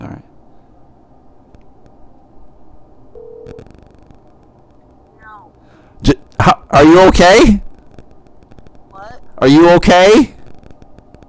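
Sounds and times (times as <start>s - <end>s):
low noisy hum: 0.0s - 11.2s
telephone ringing tone over a speakerphone: 3.1s - 3.6s
speech: 3.5s - 3.8s, 6.0s - 7.6s, 9.4s - 10.3s.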